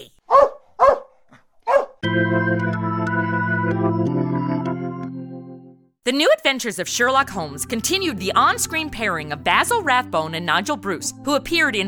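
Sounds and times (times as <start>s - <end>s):
trained dog barking at a man: 0.2s - 2.0s
sustained musical chord: 2.0s - 5.9s
speech: 2.3s - 3.2s, 6.1s - 11.8s.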